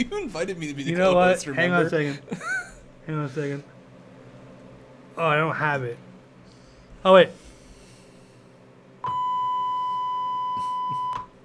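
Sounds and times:
speech: 0.0s - 2.5s, 3.1s - 3.7s, 5.2s - 6.1s, 7.0s - 7.4s
laughter: 1.9s - 2.9s
censor bleep: 9.0s - 11.3s.

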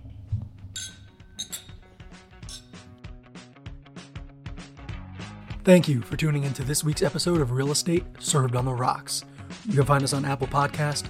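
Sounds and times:
glasses clinking together in a toast: 0.6s - 2.9s
speech: 5.6s - 11.0s.

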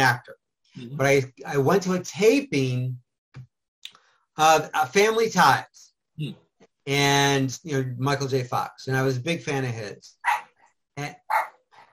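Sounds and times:
speech: 0.0s - 3.5s, 4.4s - 10.4s, 11.0s - 11.5s
dog barking: 10.2s - 10.6s, 11.3s - 11.6s.

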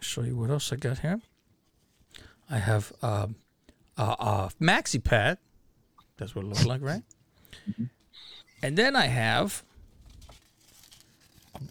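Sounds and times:
speech: 0.2s - 1.3s, 2.5s - 3.4s, 4.0s - 5.5s, 6.2s - 9.7s
large sheet of paper crinkling and rustling: 9.9s - 11.6s.

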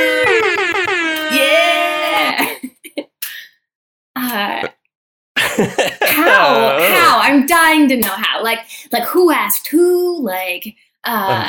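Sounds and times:
voice mimicking air horn blasts: 0.0s - 2.4s
laughter: 5.4s - 7.2s
speech: 7.5s - 11.4s.

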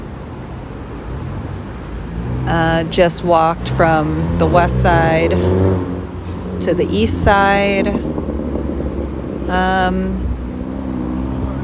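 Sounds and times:
city street traffic on 59th Street: 0.0s - 11.6s
speech: 2.5s - 5.9s, 6.6s - 8.1s, 9.5s - 10.2s.

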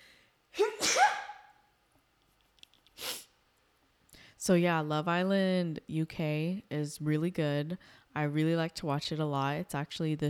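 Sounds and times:
person sneezing: 0.6s - 1.6s, 3.0s - 3.4s
speech: 4.4s - 10.2s.

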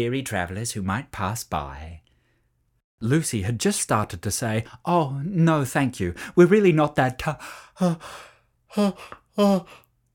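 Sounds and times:
speech: 0.0s - 2.1s, 3.0s - 9.8s
voice acting out a sleepy yawn: 7.8s - 9.9s.

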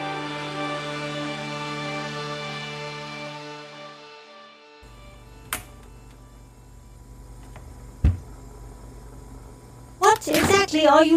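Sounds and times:
sustained musical tone: 0.0s - 7.2s
speech: 10.2s - 11.1s.

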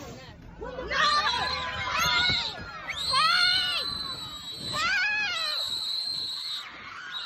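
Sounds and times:
several children screaming loudly: 0.8s - 7.2s.

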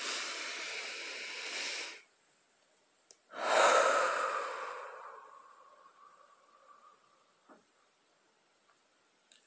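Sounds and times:
deep inhale: 0.0s - 2.1s, 3.3s - 7.5s
strong airy exhale: 0.0s - 2.1s, 3.3s - 7.4s.

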